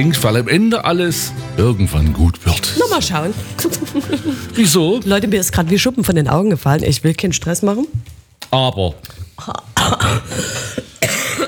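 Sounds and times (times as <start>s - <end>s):
speech: 0.0s - 10.9s
laughter: 2.7s - 5.1s
rough breathing: 3.1s - 4.7s, 10.2s - 11.0s
harsh coughs: 9.8s - 11.4s.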